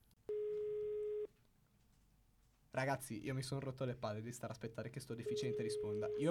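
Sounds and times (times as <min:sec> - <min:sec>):
telephone ringback tone on an outgoing call: 0:00.3 - 0:01.3, 0:05.2 - 0:06.2
speech: 0:02.7 - 0:06.2.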